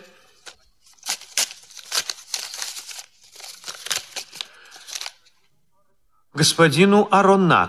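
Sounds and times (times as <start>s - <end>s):
paper package being torn open: 0.4s - 5.3s
speech: 6.4s - 7.6s.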